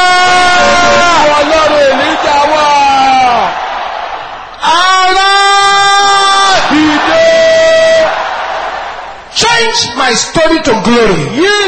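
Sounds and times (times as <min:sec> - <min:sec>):
large group of voices shouting in unison: 0:00.1 - 0:09.3
speech: 0:10.1 - 0:11.5.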